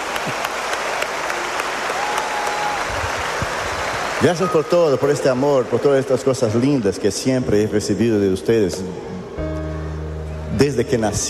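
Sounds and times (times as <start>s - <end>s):
large audience applause at a festival: 0.0s - 7.7s
speech: 4.2s - 9.1s, 10.6s - 11.2s.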